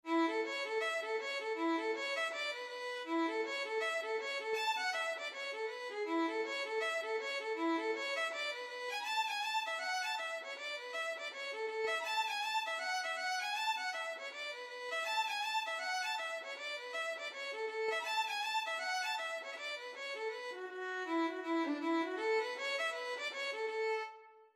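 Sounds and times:
ugly violin: 0.0s - 24.4s.

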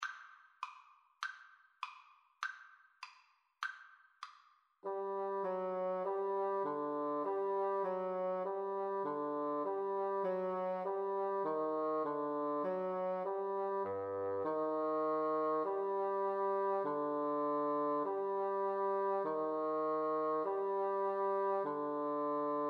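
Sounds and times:
French horn and bassoon duet: 4.8s - 22.6s.

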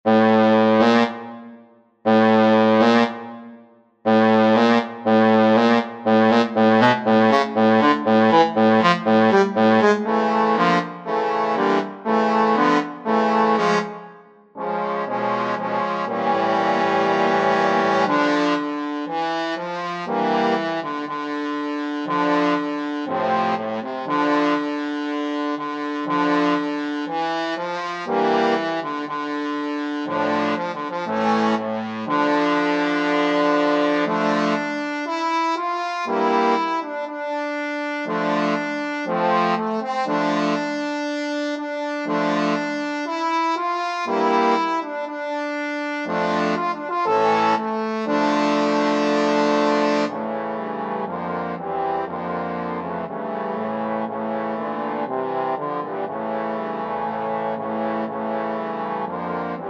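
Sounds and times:
trombone quartet playing: 0.1s - 1.2s, 2.1s - 3.3s, 4.1s - 40.8s, 41.6s - 59.6s.

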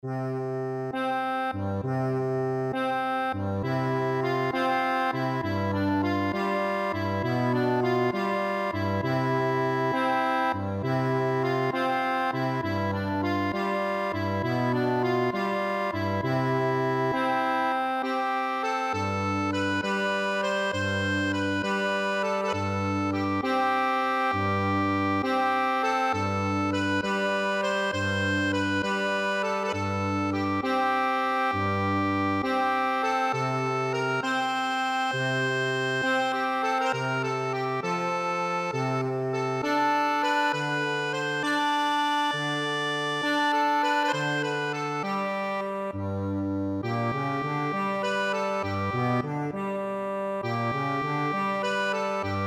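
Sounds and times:
accordion playing a barcarole: 0.0s - 52.4s.

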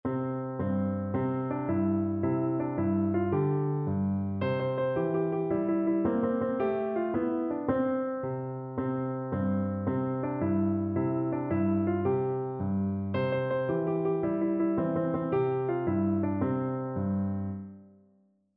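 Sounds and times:
piano melody: 0.0s - 18.0s.

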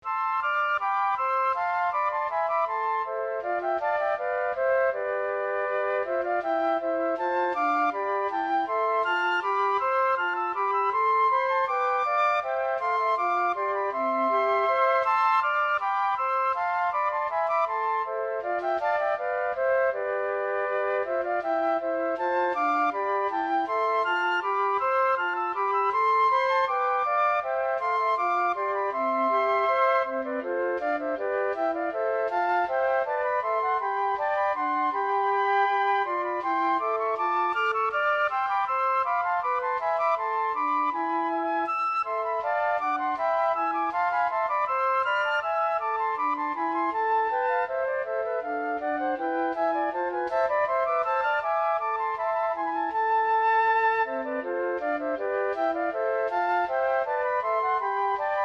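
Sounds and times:
flute trio playing a bourree: 0.0s - 58.4s.

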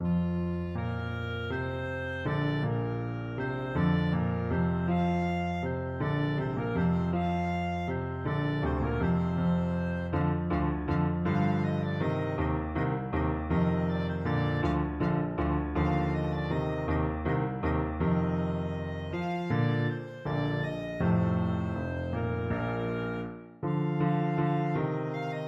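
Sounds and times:
clarinet playing: 0.0s - 25.4s.

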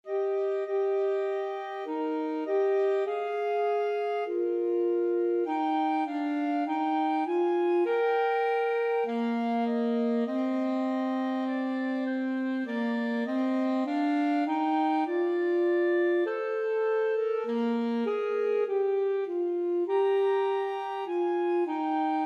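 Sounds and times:
clarinet in a clarinet saxophone duet: 0.0s - 22.2s
saxophone in a clarinet saxophone duet: 0.0s - 22.2s.

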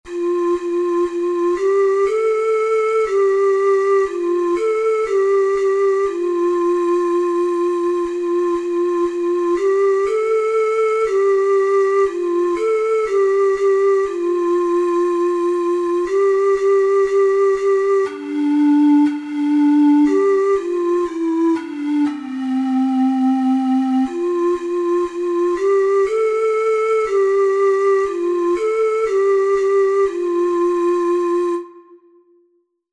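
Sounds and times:
six-hole ocarina: 0.1s - 32.6s.

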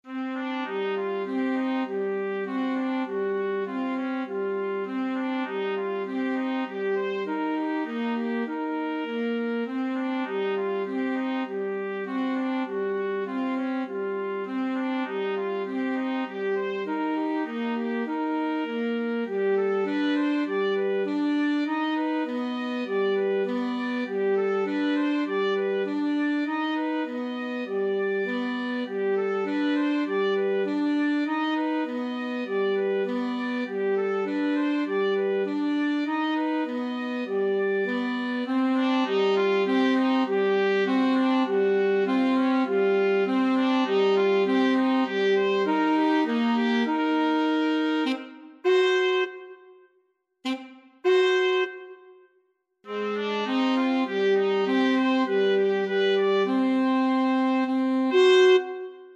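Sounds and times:
trumpet playing in a trumpet and saxophone duet: 0.0s - 49.8s, 50.4s - 52.2s, 52.9s - 59.1s.

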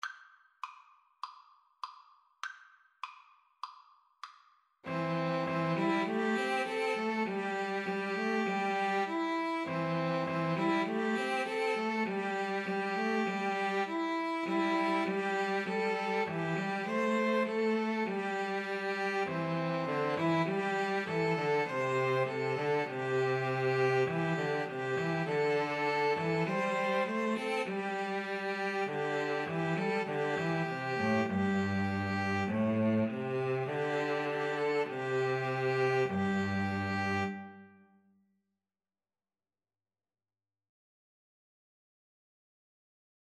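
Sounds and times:
string trio playing: 4.9s - 37.7s.

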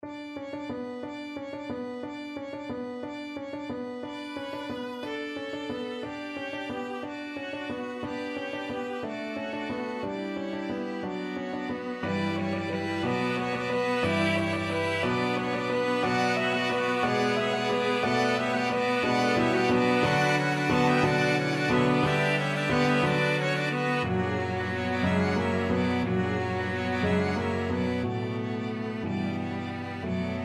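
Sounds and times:
piano quintet playing: 0.0s - 30.4s.

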